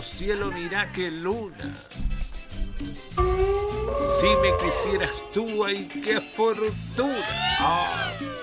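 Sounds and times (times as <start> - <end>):
speech: 0.2 - 2.0, 3.4 - 8.2
drawn-out cat meow: 3.2 - 5.5.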